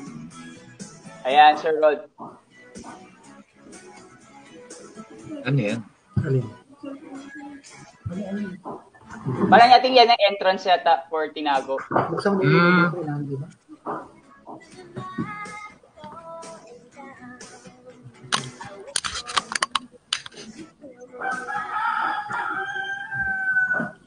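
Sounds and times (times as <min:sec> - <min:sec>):
speech: 0:01.2 - 0:03.0, 0:05.3 - 0:15.2
clicking and tapping: 0:18.3 - 0:20.5
rooster crowing: 0:21.2 - 0:24.0.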